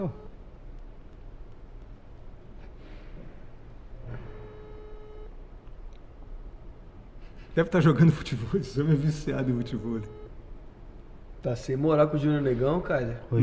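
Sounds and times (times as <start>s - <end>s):
speech: 0.0s - 0.2s, 7.6s - 10.2s, 11.4s - 13.4s
rumbling noise: 0.0s - 13.4s
phone call ringback tone on speakerphone: 4.1s - 5.3s, 10.0s - 10.3s.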